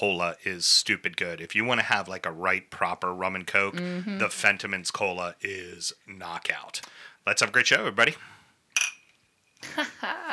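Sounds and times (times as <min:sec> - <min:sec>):
speech: 0:00.0 - 0:08.4, 0:09.6 - 0:10.3
glasses clinking in a toast: 0:08.8 - 0:09.2.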